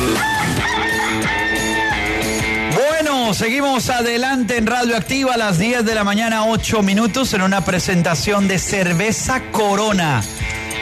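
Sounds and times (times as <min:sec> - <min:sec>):
rooster crowing: 0:00.1 - 0:02.4
speech: 0:03.4 - 0:10.6.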